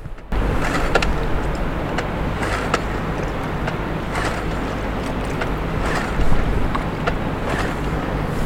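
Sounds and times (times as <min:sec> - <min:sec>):
wind outdoors: 0:00.0 - 0:08.4
water lapping at the beach shore: 0:00.3 - 0:08.4.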